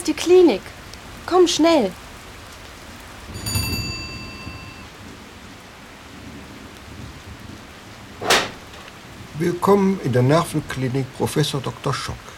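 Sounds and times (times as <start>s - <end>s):
speech: 0.0s - 2.0s, 9.4s - 12.3s
rain pattering: 0.0s - 12.3s
brief ringing tone: 3.4s - 4.9s
sharp loud whoosh: 8.2s - 9.0s.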